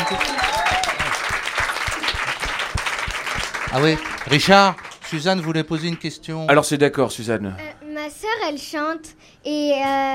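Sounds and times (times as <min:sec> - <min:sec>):
faint whistles and cheers from audience: 0:00.0 - 0:01.5
audience applauding rock critics: 0:00.0 - 0:06.2
speech: 0:03.7 - 0:10.1.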